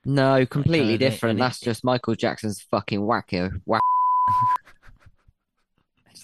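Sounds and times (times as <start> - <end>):
speech: 0.0 - 4.6
clipped speech fragments: 0.1 - 3.8
censor beep: 3.8 - 4.6.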